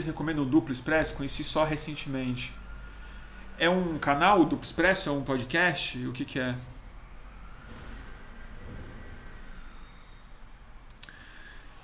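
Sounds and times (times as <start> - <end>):
speech: 0.0 - 2.6, 3.6 - 6.7
faint whine: 0.0 - 11.8
garbage truck driving past with deep engine rumble: 6.8 - 10.1.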